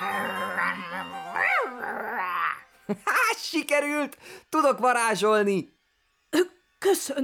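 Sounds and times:
dogs growling: 0.0s - 2.6s
speech: 2.9s - 7.2s.

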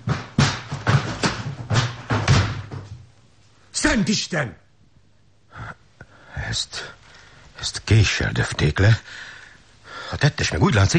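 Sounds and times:
locked door being broken in with forceful impacts: 0.0s - 2.9s
speech: 3.9s - 4.6s, 6.5s - 7.0s, 7.6s - 9.3s, 10.1s - 10.9s.

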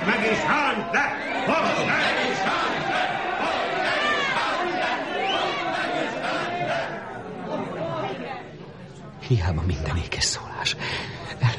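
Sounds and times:
angry crowd shouting for blood: 0.0s - 8.4s
speech: 9.3s - 11.0s.

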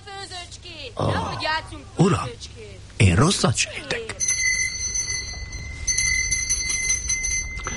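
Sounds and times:
speech: 0.6s - 4.3s
doorbell ringing: 4.2s - 7.7s.

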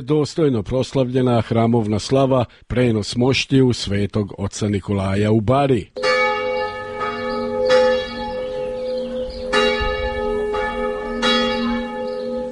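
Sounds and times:
speech: 0.0s - 6.0s
Serbian Orthodox church bell ringing to call worshippers: 6.0s - 12.5s.

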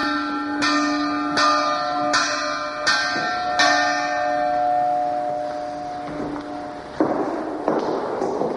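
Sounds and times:
mid-19th century church bell tolling: 0.0s - 7.8s.

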